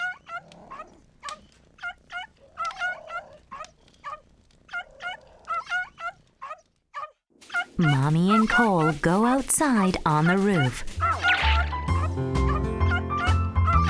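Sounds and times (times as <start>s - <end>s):
cat crying outside in the snow: 0.0s - 8.0s, 10.4s - 13.1s
speech: 7.8s - 11.0s.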